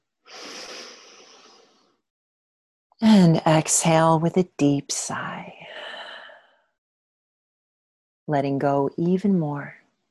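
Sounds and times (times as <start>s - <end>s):
deep inhale through the nose during a breathing exercise: 0.3s - 2.0s
speech: 3.0s - 5.8s, 8.3s - 9.8s.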